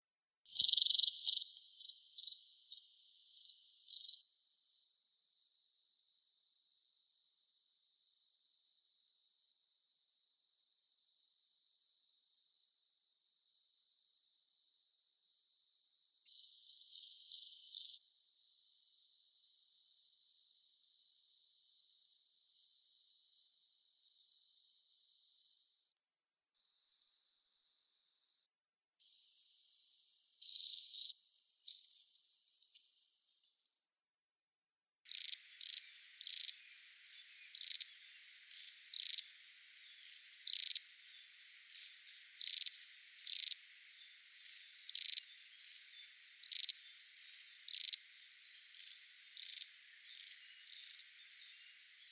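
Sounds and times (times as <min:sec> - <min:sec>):
Aegithalos caudatus calling: 0:00.5 - 0:09.5, 0:13.4 - 0:33.9, 0:35.1 - 0:52.0.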